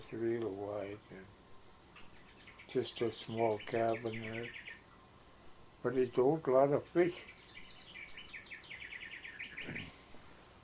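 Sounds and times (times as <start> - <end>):
speech: 0.1 - 1.4, 2.7 - 4.6, 5.8 - 7.4
bird clock playing bird song chirps: 2.0 - 4.9, 7.2 - 9.9.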